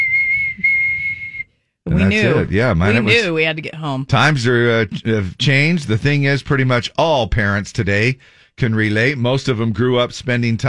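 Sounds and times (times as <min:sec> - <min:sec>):
loud shrill whistle blast blown to call kids home: 0:00.0 - 0:01.6
speech: 0:02.0 - 0:10.6.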